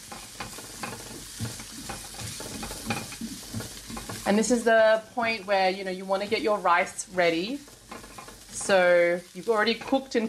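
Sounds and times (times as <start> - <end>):
utensil scraping and clinking while stirring ingredients in a pan: 0.0 - 4.6, 6.2 - 9.0, 9.6 - 10.2
ingredients sizzling in a pan over medium-high heat: 0.0 - 10.2
speech: 4.3 - 7.7, 8.7 - 10.2.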